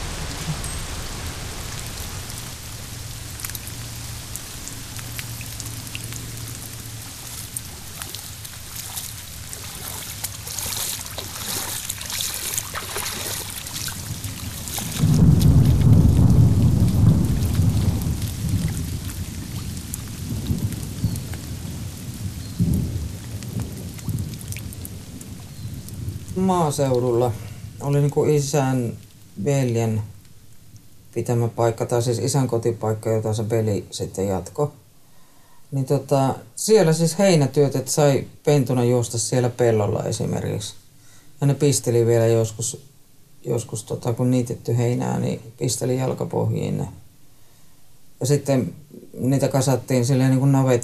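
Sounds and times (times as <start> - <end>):
thunder rumble: 0.0 - 28.5
steady rain: 0.0 - 50.8
speech: 26.5 - 30.1, 31.1 - 34.8, 35.7 - 40.8, 41.4 - 47.0, 48.2 - 50.8.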